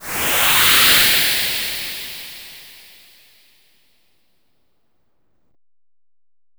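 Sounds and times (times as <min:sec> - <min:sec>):
map move boost effect: 0:00.0 - 0:03.2.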